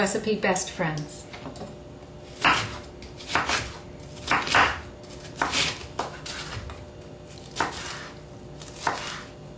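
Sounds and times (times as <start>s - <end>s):
speech: 0.0s - 1.8s
knife chopping bell peppers on a cutting board: 2.3s - 6.8s, 7.4s - 9.3s.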